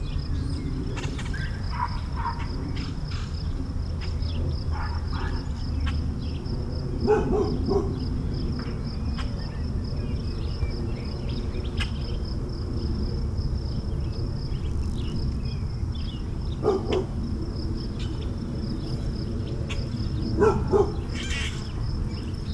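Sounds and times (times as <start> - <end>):
birds in suburban morning: 0.0 - 22.5
insects in suburban morning: 0.0 - 22.5
dogs barking in suburban morning: 1.7 - 2.6, 4.7 - 5.6, 6.9 - 8.2, 16.5 - 17.3, 20.2 - 21.5.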